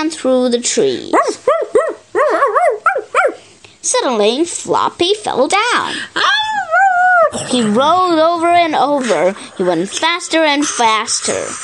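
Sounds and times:
speech: 0.0 - 1.5, 3.8 - 6.4, 7.3 - 11.6
wolves barking and yipping: 1.2 - 3.4.

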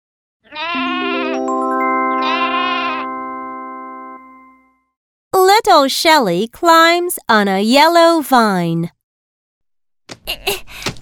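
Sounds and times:
sheep bleating: 0.4 - 1.4, 2.2 - 3.1
soft bell-like tones: 0.8 - 4.9
speech: 5.6 - 9.0, 10.3 - 10.9.

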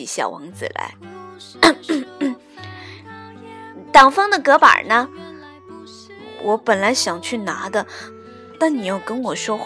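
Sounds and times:
speech: 0.0 - 2.3, 4.0 - 5.2, 6.4 - 9.6
person fake coughing: 1.6 - 2.4.

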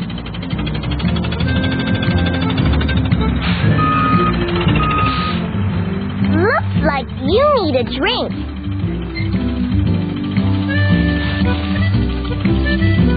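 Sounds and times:
big water truck diesel engine rumbling: 0.0 - 13.1
water truck reversing beeps: 3.7 - 5.4
speech: 7.8 - 8.5.

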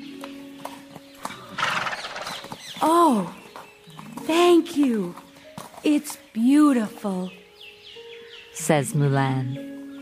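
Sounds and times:
horse hooves clip-clopping: 0.0 - 7.3
horse whinnying: 1.3 - 2.6
speech: 2.8 - 3.4, 4.3 - 5.2, 5.8 - 7.4, 8.6 - 9.8.

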